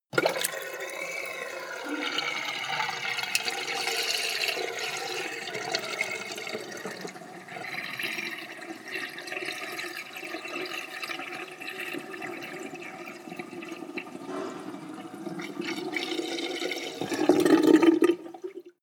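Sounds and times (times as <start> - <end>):
bathroom sink draining: 0.0 - 18.8.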